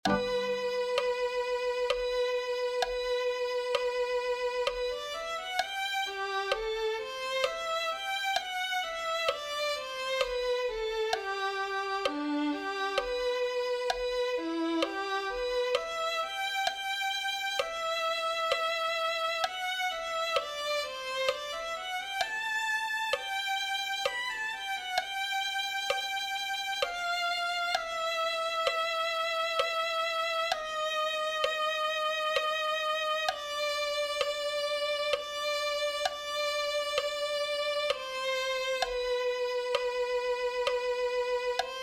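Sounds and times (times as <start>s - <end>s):
violin music: 0.0s - 41.8s.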